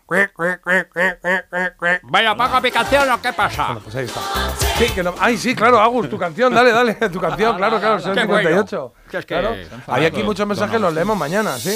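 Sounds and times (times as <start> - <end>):
person imitating duck quacks: 0.0 - 2.4
speech: 0.1 - 0.8, 2.2 - 11.7
laughter: 5.4 - 8.3.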